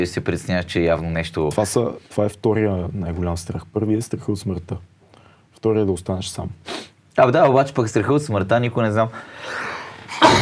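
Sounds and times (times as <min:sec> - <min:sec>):
speech: 0:00.0 - 0:04.9, 0:05.6 - 0:10.3
soft intake of breath: 0:06.6 - 0:07.0, 0:09.1 - 0:10.1
sharp sneeze: 0:10.2 - 0:10.3.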